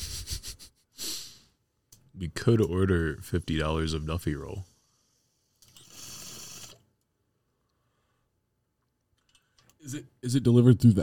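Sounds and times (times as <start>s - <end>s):
pet sniffing at the microphone: 0.0s - 1.3s
speech: 2.2s - 4.7s, 9.9s - 11.0s.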